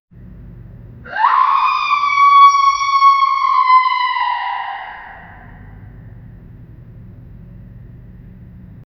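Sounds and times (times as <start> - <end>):
distant echoing scream in a dark abandoned building: 1.0 - 6.2.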